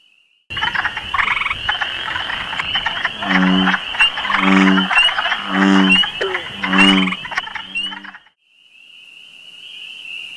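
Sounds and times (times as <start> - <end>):
chorus of spring peeper frogs peeping: 0.0 - 10.3
low pulsing croaks: 0.5 - 8.3.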